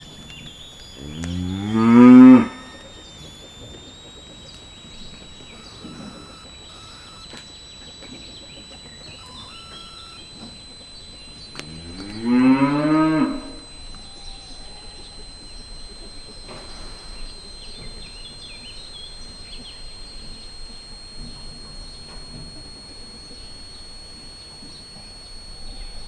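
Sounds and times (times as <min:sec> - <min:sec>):
whistling hum: 0:00.0 - 0:26.0
Hungarian Simmental cattle bellowing: 0:01.0 - 0:02.6, 0:11.7 - 0:13.6.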